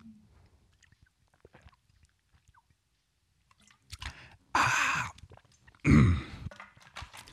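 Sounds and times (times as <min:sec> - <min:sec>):
person drinking water with wet clicks and gulps: 0:00.0 - 0:02.7, 0:03.6 - 0:07.3.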